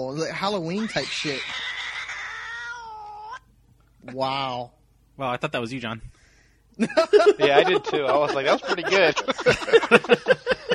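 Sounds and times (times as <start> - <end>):
speech: 0.0 - 1.7, 4.0 - 10.7
cat meowing: 0.7 - 3.5
laughter: 6.8 - 10.7.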